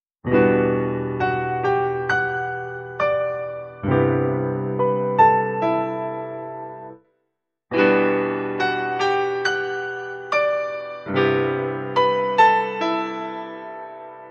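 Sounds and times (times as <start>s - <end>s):
grand piano with and without EQ: 0.2s - 7.0s, 7.7s - 14.2s.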